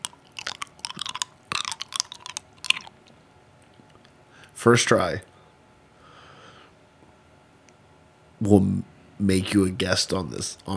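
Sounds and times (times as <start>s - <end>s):
slurping and sucking mouth sounds: 0.0s - 2.9s
hard candy cough drop clicking against teeth: 0.0s - 4.0s
speech: 4.6s - 5.3s, 8.4s - 10.7s.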